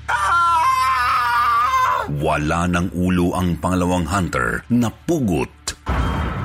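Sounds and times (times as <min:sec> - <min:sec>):
man screaming in terror: 0:00.0 - 0:02.2
speech: 0:02.2 - 0:05.6.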